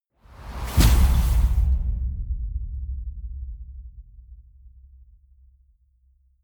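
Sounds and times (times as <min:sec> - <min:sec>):
wind gust: 0:00.2 - 0:02.3.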